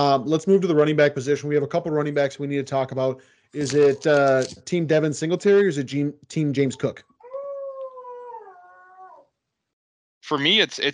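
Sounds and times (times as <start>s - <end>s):
speech: 0.0s - 7.1s, 10.3s - 10.9s
dog howling: 7.2s - 9.3s.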